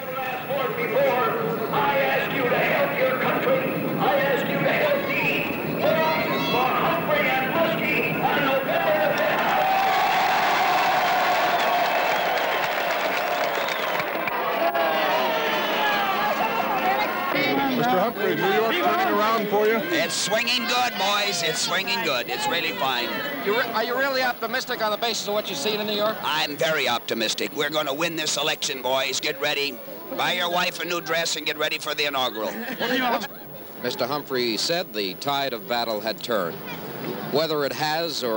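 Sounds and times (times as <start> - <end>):
large crowd cheering at a presidential campaign rally in New York: 0.0 - 27.0
speech: 0.7 - 1.1, 19.7 - 38.3
large crowd clapping at a presidential campaign rally in New York: 9.1 - 17.5
laughter: 32.2 - 33.8.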